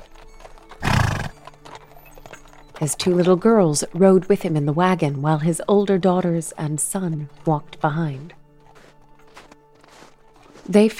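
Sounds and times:
horse hitched to a wagon whinnying: 0.0s - 1.9s
faint scuffling of hooves on lightly snow-covered ground: 0.0s - 10.9s
speech: 2.8s - 8.4s, 10.7s - 10.9s.

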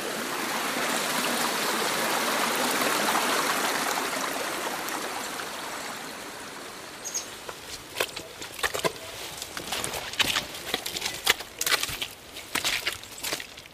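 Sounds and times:
steady rush of flowing water: 0.0s - 13.7s
boots squelching through mud on a wet hill trail: 7.3s - 13.7s.

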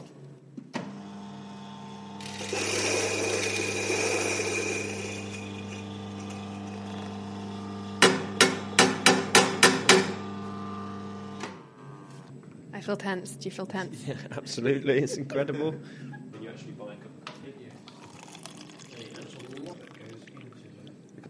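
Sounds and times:
motorized coffee grinder grinding coffee beans: 0.9s - 11.5s
speech: 12.8s - 16.1s.

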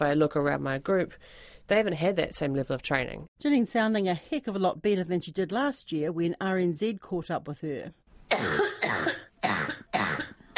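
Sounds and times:
speech: 0.0s - 9.2s
raspy cough of a COVID-19 patient: 8.3s - 10.5s.

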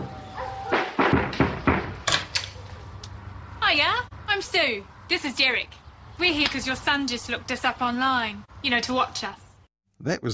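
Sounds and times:
firm knocking on a door: 0.7s - 2.0s
speech: 3.7s - 9.4s, 10.0s - 10.3s.

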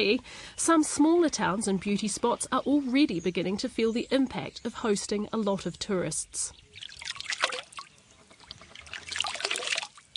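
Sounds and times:
speech: 0.0s - 6.9s
water trickling at a deep blue spring near Putaruru in South Waikato New Zealand: 6.6s - 10.1s.

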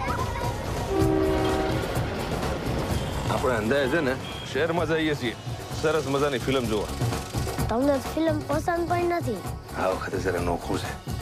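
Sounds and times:
busy railway station rumble: 0.1s - 7.1s
train horn blaring at a railway station: 0.9s - 3.5s
speech: 3.5s - 7.2s, 7.7s - 11.1s.

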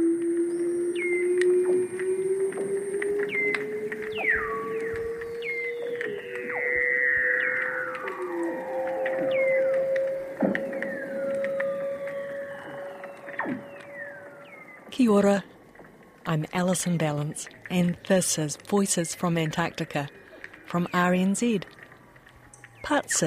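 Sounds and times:
underwater seal calls with rising tones, whistles and trills: 0.0s - 14.9s
speech: 15.0s - 15.5s, 16.3s - 21.8s, 22.9s - 23.2s.

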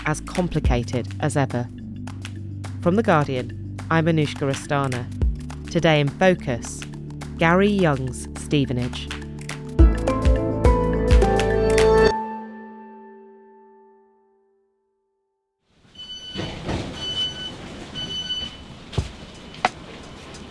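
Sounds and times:
speech: 0.1s - 1.8s, 2.8s - 9.2s
bright chord: 9.8s - 14.5s
thin high-pitched train brake squeal: 16.0s - 18.7s.

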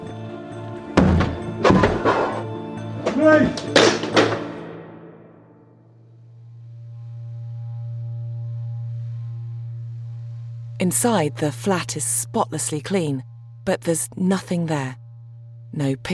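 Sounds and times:
police officers smashing in the door of a flat: 1.0s - 2.4s, 3.1s - 4.7s
speech: 3.2s - 3.8s, 10.8s - 15.0s, 15.7s - 16.1s
low steady droning hum: 6.0s - 16.1s.

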